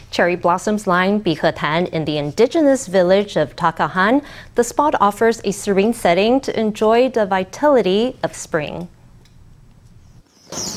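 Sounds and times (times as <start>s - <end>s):
speech: 0.2s - 9.0s, 10.5s - 10.7s
birds tweeting among blossoming branches: 10.2s - 10.7s.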